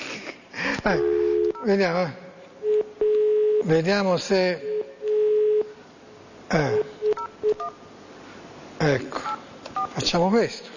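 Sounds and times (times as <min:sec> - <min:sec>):
speech: 0:00.8 - 0:02.2, 0:03.6 - 0:04.7, 0:06.5 - 0:06.9, 0:08.8 - 0:09.3, 0:10.0 - 0:10.7
steady electronic telephone line tone: 0:00.9 - 0:01.7, 0:02.6 - 0:03.6, 0:04.7 - 0:05.8.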